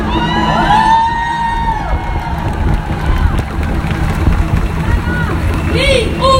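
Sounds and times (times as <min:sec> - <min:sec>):
crowd whoops: 0:00.0 - 0:03.6
large protest crowd shouting and cheering: 0:00.0 - 0:06.3.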